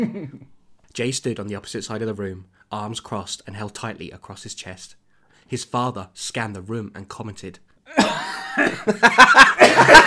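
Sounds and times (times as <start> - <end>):
person coughing: 0.0 - 0.5, 7.9 - 8.9
speech: 0.0 - 10.0
laughter: 7.9 - 10.0.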